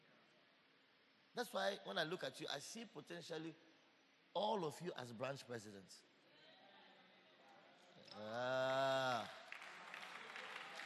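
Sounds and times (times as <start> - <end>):
speech: 1.4 - 3.7, 4.4 - 6.1, 8.0 - 9.4
audience clapping in a large room: 9.1 - 10.8.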